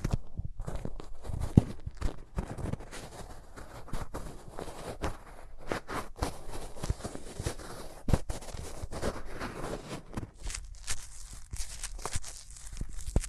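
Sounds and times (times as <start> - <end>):
hands rubbing very close to the microphone: 1.4 - 13.2
brushing strokes: 9.5 - 13.2.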